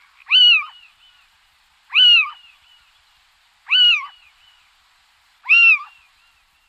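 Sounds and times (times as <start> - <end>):
male little owl calling: 0.0 - 1.3, 1.9 - 2.9, 3.6 - 4.8, 5.4 - 6.5.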